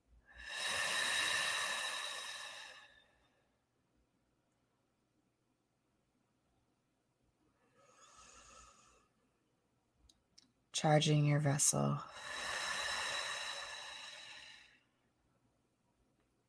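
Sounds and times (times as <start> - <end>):
deep breathing during a guided meditation: 0.3 - 3.4, 7.6 - 9.3, 12.0 - 15.0
speech: 10.8 - 12.3.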